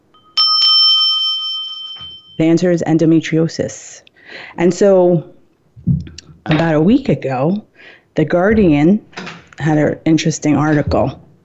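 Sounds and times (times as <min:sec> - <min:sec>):
small bell ringing: 0:00.0 - 0:02.7
speech: 0:02.4 - 0:11.2.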